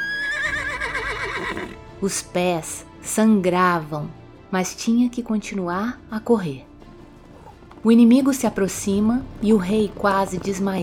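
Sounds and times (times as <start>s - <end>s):
horse whinnying: 0.0s - 1.9s
speech: 2.0s - 6.7s, 7.8s - 10.8s.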